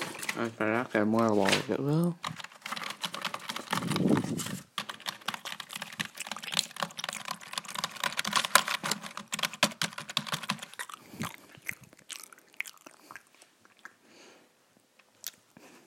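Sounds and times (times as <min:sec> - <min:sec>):
speech: 0:00.4 - 0:02.3
typing on a computer keyboard: 0:02.2 - 0:10.8.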